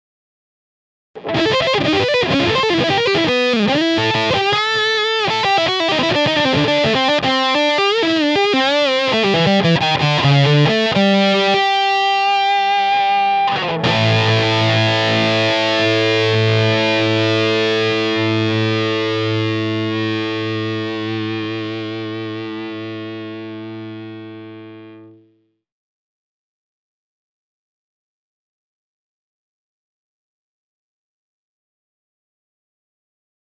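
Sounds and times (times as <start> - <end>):
lead tones from a 4 watt amplifier with treble booster: 1.2 - 25.2.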